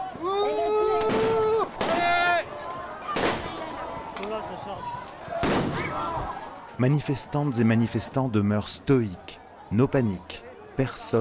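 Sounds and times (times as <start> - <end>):
crowd noise at a street protest: 0.0 - 11.1
police tear gas grenades exploding at a street protest: 5.4 - 6.0
speech: 6.8 - 11.1.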